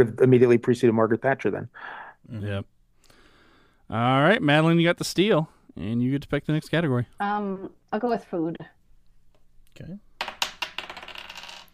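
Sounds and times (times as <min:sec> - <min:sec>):
speech: 0:00.0 - 0:02.7, 0:03.9 - 0:08.8, 0:09.8 - 0:10.1
dice clattering onto a hard surface: 0:10.2 - 0:11.7.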